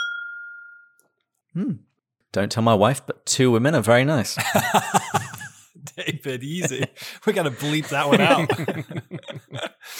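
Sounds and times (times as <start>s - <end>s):
glasses clinking in a toast: 0.0s - 1.0s
speech: 1.6s - 5.3s, 5.9s - 9.6s
laughter: 4.4s - 9.9s.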